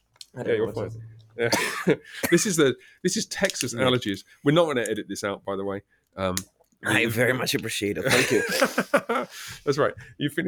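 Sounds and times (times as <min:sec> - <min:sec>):
speech: 0:00.4 - 0:10.4
man clearing throat with a gravelly rasp: 0:01.4 - 0:02.5
man coughing: 0:01.4 - 0:02.6
laughter: 0:08.1 - 0:09.5.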